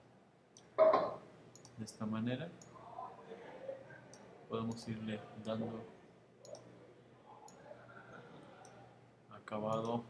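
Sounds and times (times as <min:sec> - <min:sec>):
computer mouse click: 0:01.5 - 0:01.8, 0:06.4 - 0:06.7, 0:09.7 - 0:10.0
speech: 0:01.8 - 0:02.7, 0:04.5 - 0:06.0, 0:09.5 - 0:10.0.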